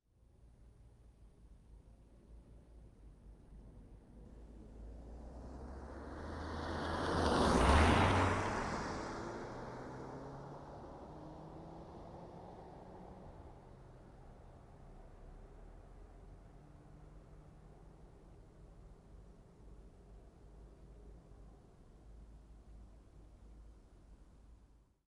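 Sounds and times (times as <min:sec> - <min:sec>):
Chevrolet Silverado tow truck passing fast with a left turn: 0:05.2 - 0:13.2.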